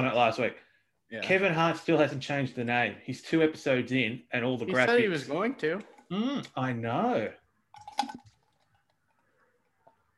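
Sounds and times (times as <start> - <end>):
speech: 0.0 - 7.4, 8.0 - 8.3
faint liquid clicks: 7.7 - 10.1
person gulping drinking water: 7.7 - 10.1.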